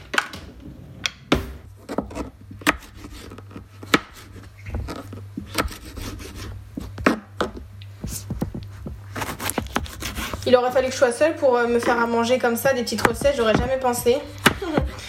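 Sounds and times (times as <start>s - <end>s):
low steady hum: 0.0s - 15.0s
knife slicing an onion into thin strips: 1.9s - 7.4s, 8.9s - 10.5s
speech: 10.5s - 14.4s.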